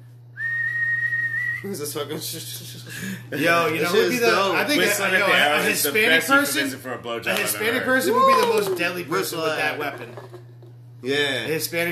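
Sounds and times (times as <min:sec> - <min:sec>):
person whistling one long high note: 0:00.3 - 0:01.7
speech: 0:01.6 - 0:10.4, 0:11.0 - 0:11.9.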